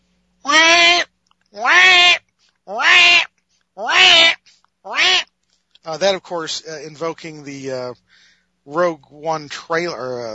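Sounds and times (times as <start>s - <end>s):
cries of loth-cat kittens, science fiction creature sound effect: 0.5s - 1.0s, 1.6s - 5.2s
speech: 6.0s - 10.3s.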